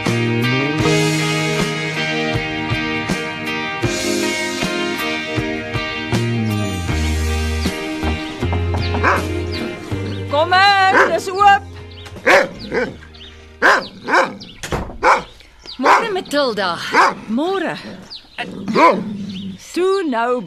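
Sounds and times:
low sustained tonal background: 0.0 - 19.7
high wavering whine-like yelps: 8.9 - 9.4, 12.2 - 16.2
dog barking: 9.0 - 9.3, 10.9 - 11.2, 12.2 - 13.0, 13.6 - 14.4, 15.0 - 16.2, 16.9 - 17.2, 18.7 - 19.1
speech: 16.5 - 19.1, 19.8 - 20.4.

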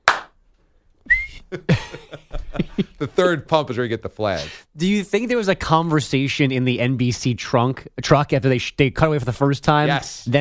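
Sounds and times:
person whistling to imitate a football referee's penalty whistle: 1.0 - 1.5
laughter: 1.5 - 3.2
speech: 1.5 - 10.3.

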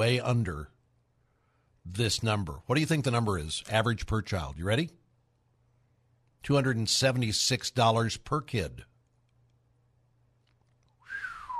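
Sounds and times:
speech: 0.0 - 0.8, 1.8 - 5.0, 6.4 - 8.9
person attempting to whistle in surprise: 11.0 - 11.5.

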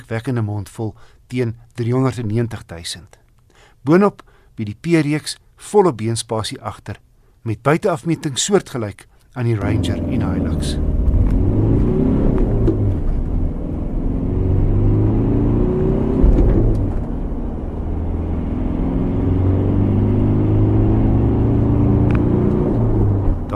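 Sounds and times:
speech: 0.1 - 3.2, 3.8 - 11.0
two-litre turbo diesel pickup engine producing 120 kW and 400 Nm driving: 9.6 - 23.5.

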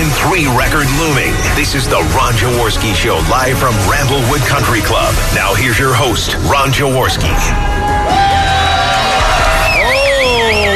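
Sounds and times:
speech: 0.4 - 8.6
raucous crowd cheering: 7.3 - 10.7
whoops and yells from the crowd: 7.6 - 10.7.

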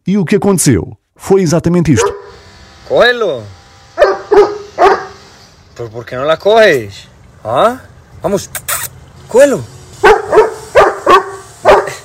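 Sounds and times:
speech: 0.1 - 3.6, 4.3 - 5.0, 5.8 - 10.4
dog barking beside a swimming pool for a ball in the water: 2.0 - 2.4, 4.0 - 5.2, 10.0 - 12.0.

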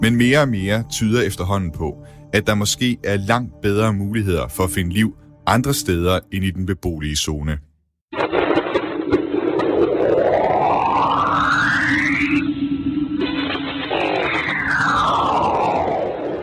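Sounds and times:
speech: 0.0 - 7.7
eerie electronic drone from sonified Cassini magnetic field data around Enceladus: 8.3 - 16.4
rising and falling whistling tones from sonified magnetic field data: 10.1 - 16.4.

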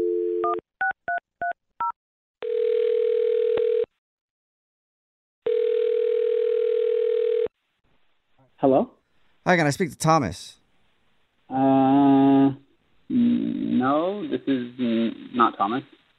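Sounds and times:
short telephone dial tone: 0.0 - 0.6, 2.4 - 3.9, 5.4 - 7.5
speech: 8.6 - 10.6, 11.5 - 13.2, 13.8 - 16.0.

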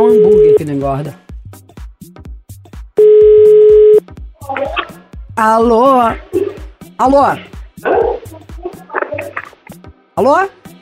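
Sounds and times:
steady electronic telephone tone while a call is placed: 0.0 - 0.6, 3.0 - 4.0
speech: 0.0 - 2.2, 5.4 - 6.4, 7.0 - 8.1, 10.2 - 10.6
rhythmic low thumps: 0.0 - 9.8.

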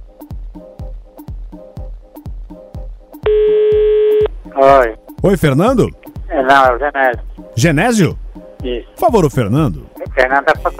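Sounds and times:
telephone ringing tone: 3.3 - 4.3
speech: 4.6 - 10.7.

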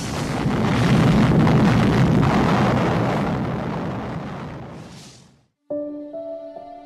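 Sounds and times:
atomic bomb explosion roaring and rumbling: 0.0 - 5.4.

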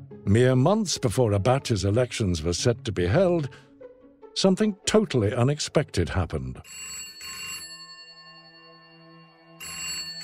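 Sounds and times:
speech: 0.3 - 3.7, 4.4 - 7.0
telephone ringing: 6.6 - 10.2.

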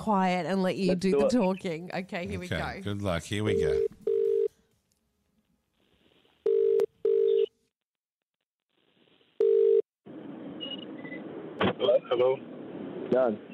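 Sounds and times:
speech: 0.0 - 4.0, 13.1 - 13.5
phone line ringing with electronic ring tones: 3.4 - 4.5, 6.4 - 7.6, 9.4 - 9.8.

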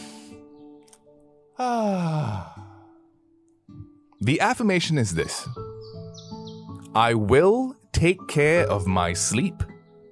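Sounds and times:
speech: 1.6 - 2.5, 4.2 - 5.6, 7.0 - 9.7
person taking a long deep breath let out as a voiced sigh: 1.6 - 3.1.

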